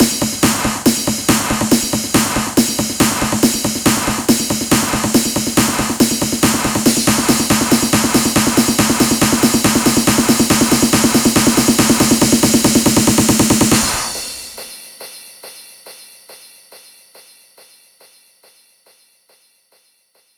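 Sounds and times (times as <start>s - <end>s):
hands up trance drum fills at 140 BPM: 0.0s - 14.7s.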